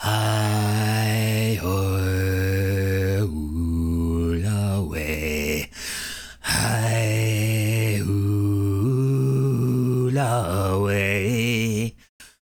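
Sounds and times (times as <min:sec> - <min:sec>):
man singing: 0:00.0 - 0:12.4.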